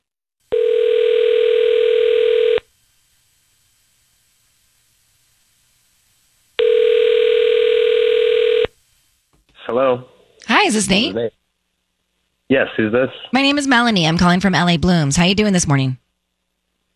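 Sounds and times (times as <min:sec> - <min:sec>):
electronic telephone ringback tone of an outgoing call: 0:00.5 - 0:02.6, 0:06.6 - 0:08.7
speech: 0:10.6 - 0:11.4, 0:12.5 - 0:16.0.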